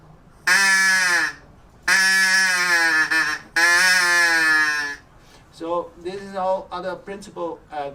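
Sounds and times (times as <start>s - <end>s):
bird call whistle blasts: 0.5s - 5.0s
speech: 5.9s - 7.9s.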